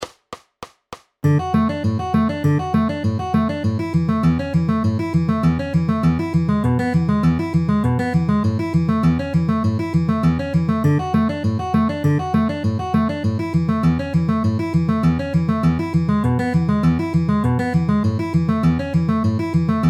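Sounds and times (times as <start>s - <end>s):
D A E A outer inner ring middle picking with alternating bass at 200 bpm: 1.2s - 19.8s.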